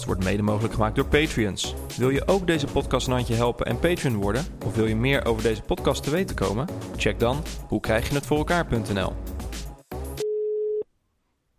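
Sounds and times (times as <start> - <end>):
speech: 0.0 - 9.2
telephone ringing tone while placing a call: 10.2 - 10.8.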